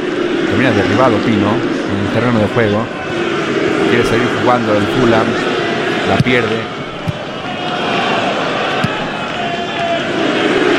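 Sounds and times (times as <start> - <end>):
large stadium crowd roaring and booing: 0.0 - 10.7
speech: 0.6 - 3.0, 3.6 - 5.5, 6.1 - 6.8
sharp thuds: 6.1 - 7.5, 8.8 - 9.2.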